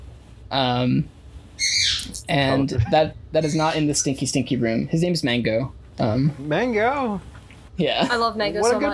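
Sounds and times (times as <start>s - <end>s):
speech: 0.5s - 8.9s
pet bird squawking loudly: 1.6s - 2.2s, 3.4s - 4.2s.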